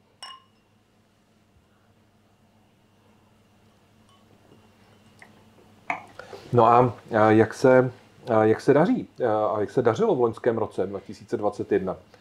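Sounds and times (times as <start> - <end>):
low room hum: 0.0 - 12.2
glasses clinking in a toast: 0.2 - 0.7, 4.0 - 5.1
speech: 6.5 - 12.2.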